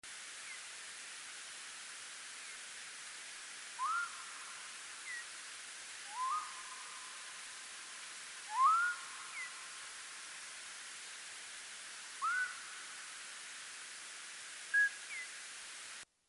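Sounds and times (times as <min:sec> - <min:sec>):
social calls of hoary bat: 0:03.8 - 0:05.4, 0:06.0 - 0:07.5, 0:08.4 - 0:09.8, 0:12.1 - 0:13.3, 0:14.7 - 0:15.4.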